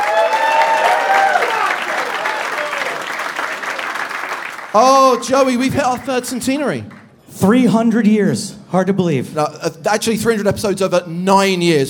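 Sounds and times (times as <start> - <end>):
crowd cheering and whooping: 0.0 - 3.5
crowd at a live show applauding: 0.0 - 6.1
speech: 4.7 - 11.8.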